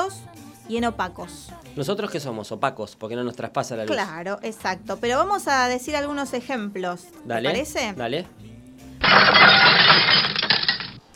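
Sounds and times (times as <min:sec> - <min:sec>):
speech: 0:00.7 - 0:08.5
glass shards tinkling and clinking: 0:09.0 - 0:11.0
glass shattering: 0:09.0 - 0:11.1.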